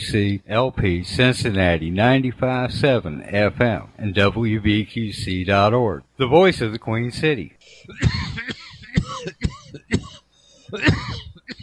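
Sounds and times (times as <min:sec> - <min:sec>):
speech: 0:00.0 - 0:08.5
man clearing throat: 0:07.8 - 0:11.6
man coughing in a rough hacking fit: 0:07.8 - 0:11.6.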